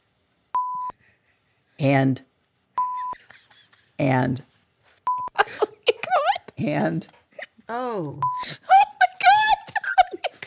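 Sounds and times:
high-pitched censor bleeps over swear words on television: 0:00.6 - 0:00.9, 0:02.8 - 0:03.2, 0:05.1 - 0:05.4, 0:08.2 - 0:08.4
speech: 0:01.8 - 0:02.3, 0:04.0 - 0:04.5, 0:06.6 - 0:08.7
laughter: 0:02.9 - 0:04.0, 0:05.3 - 0:07.1, 0:08.4 - 0:10.4.

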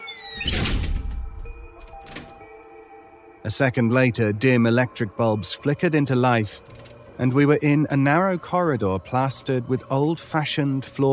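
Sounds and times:
door swinging shut with a heavy thud and rattle: 0:00.3 - 0:02.4
speech: 0:03.4 - 0:11.1.

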